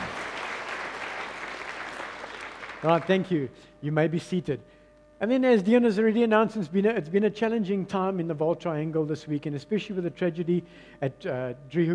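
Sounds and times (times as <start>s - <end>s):
audience applause at a morning gathering: 0.0s - 3.2s
speech: 2.8s - 11.9s.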